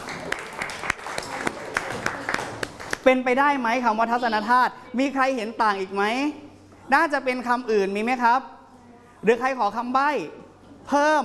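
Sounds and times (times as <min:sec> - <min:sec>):
students in a classroom applauding a classmate: 0:00.0 - 0:03.0
speech: 0:03.0 - 0:08.5, 0:09.2 - 0:11.2.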